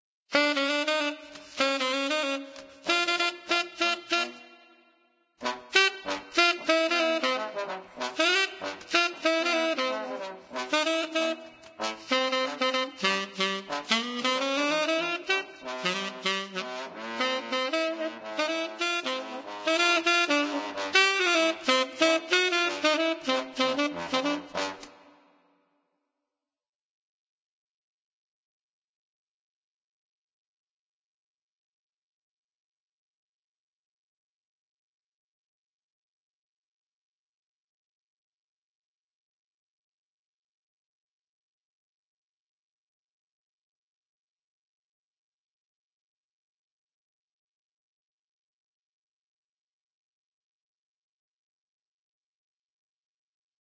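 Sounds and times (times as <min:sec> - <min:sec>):
saxophone duet: 0:00.3 - 0:25.3.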